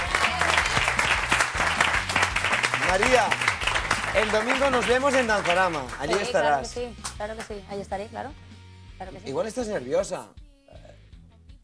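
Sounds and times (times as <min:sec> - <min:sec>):
audience applause: 0:00.0 - 0:07.2
speech: 0:02.9 - 0:03.5, 0:04.2 - 0:10.4.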